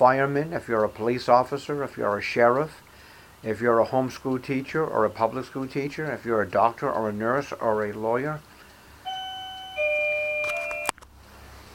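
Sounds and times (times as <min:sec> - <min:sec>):
speech: 0:00.0 - 0:02.8, 0:03.4 - 0:08.5
electronic doorbell ringing: 0:09.0 - 0:11.0.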